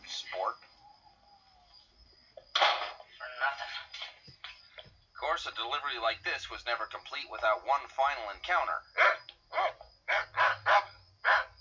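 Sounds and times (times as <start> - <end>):
speech: 5.4 - 9.2
small dog yapping: 9.0 - 11.5.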